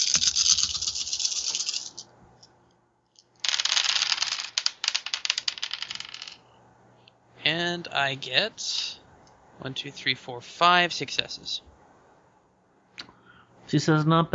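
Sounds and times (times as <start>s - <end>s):
handful of dice rattling and clattering: 0.0s - 2.1s, 3.2s - 6.5s
speech: 7.5s - 9.0s, 9.6s - 11.7s, 13.7s - 14.3s.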